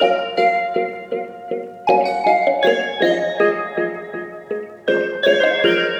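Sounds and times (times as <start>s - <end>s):
nostalgic melody loop in A sharp minor: 0.0s - 5.9s.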